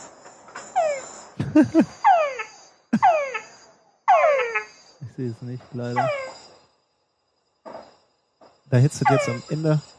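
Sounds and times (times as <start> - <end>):
frog mating call in shallow pond: 0.8 - 1.1, 1.8 - 5.0, 5.9 - 6.4, 8.9 - 9.8
person laughing: 1.4 - 2.0, 3.0 - 3.3
speech: 1.5 - 2.1, 5.2 - 6.3, 8.7 - 9.9.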